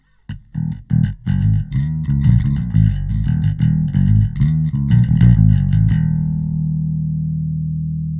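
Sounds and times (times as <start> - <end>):
bass: 0.0 - 8.1.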